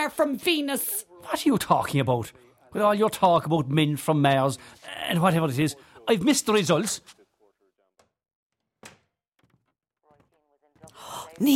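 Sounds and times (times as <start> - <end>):
speech: 0.0 - 7.2, 11.4 - 11.5
door banged shut with a loud sharp thud: 8.6 - 9.8.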